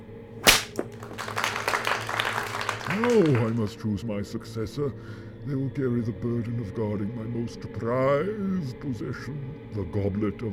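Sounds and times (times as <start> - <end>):
ambient noise hiss: 0.0 - 10.5
single sharp whip crack with brief echo: 0.4 - 1.1
speech: 3.0 - 10.5.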